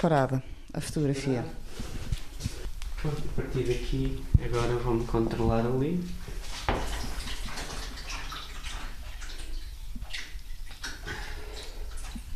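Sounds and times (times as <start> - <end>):
speech: 0.0 - 6.3
liquid sloshing in shallow darkroom tanks rocked by hand: 3.0 - 12.3.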